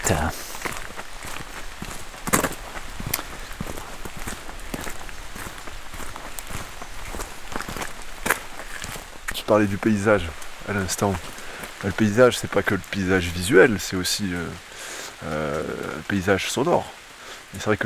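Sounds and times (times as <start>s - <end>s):
footsteps of people walking outdoors: 0.0s - 13.8s
constant hiss of noise: 0.0s - 17.8s
speech: 0.1s - 0.5s, 9.5s - 17.8s.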